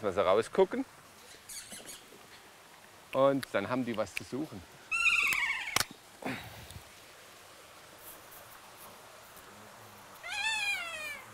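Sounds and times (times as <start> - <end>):
speech: 0.0 - 1.0, 3.1 - 4.8, 6.2 - 6.5
faint hiss: 0.0 - 11.3
kea parrots screeching in an aviary: 1.3 - 2.1, 4.9 - 5.9, 10.2 - 11.3.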